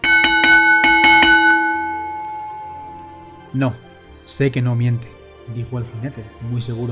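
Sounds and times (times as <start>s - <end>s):
bell ringing: 0.0s - 3.5s
speech: 3.6s - 6.9s.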